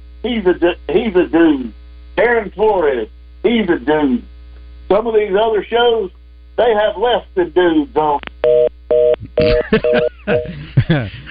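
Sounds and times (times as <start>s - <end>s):
speech: 0.2s - 4.3s, 4.9s - 8.6s, 9.4s - 11.3s
old telephone system dial tone and dialing beeps: 8.4s - 10.6s
laughter: 9.2s - 11.3s.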